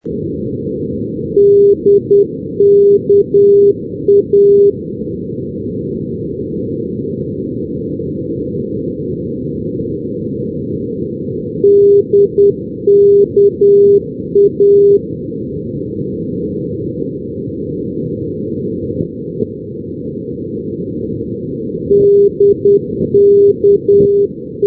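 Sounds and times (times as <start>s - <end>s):
NDB radio beacon signal at Dhekelia: 1.4s - 4.7s, 11.6s - 15.0s, 21.9s - 24.6s.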